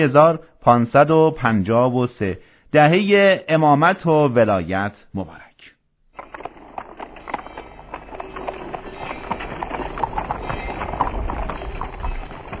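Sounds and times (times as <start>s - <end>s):
speech: 0.0s - 5.4s
pack animal hoofbeats of a caravan: 6.2s - 12.5s.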